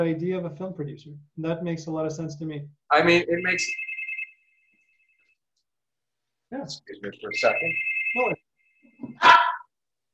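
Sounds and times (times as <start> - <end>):
speech: 0.0 - 3.9, 6.5 - 8.4, 9.0 - 9.4
dog barking: 9.2 - 9.6.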